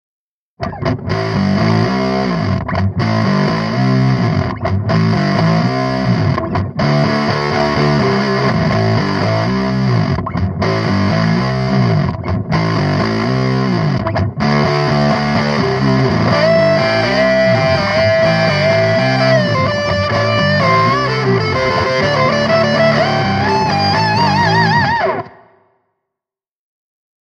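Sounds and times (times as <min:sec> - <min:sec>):
afro fuzz with pedals: 0:00.6 - 0:25.4.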